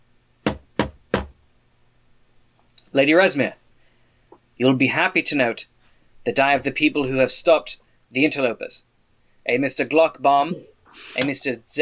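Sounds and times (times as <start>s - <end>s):
firm knocks on the wooden door of a building on a fog-covered courtyard: 0.4s - 1.4s
speech: 2.9s - 3.6s, 4.6s - 11.8s.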